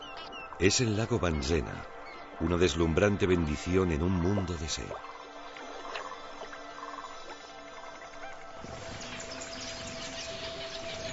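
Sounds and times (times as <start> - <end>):
red-billed quelea flock chirping by a lake: 0.0 - 11.1
speech: 0.6 - 5.1.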